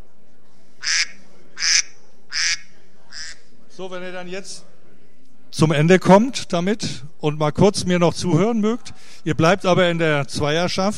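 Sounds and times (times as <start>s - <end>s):
duck quacks as a timer signal: 0.8s - 3.4s
speech: 3.8s - 4.7s, 5.5s - 10.9s.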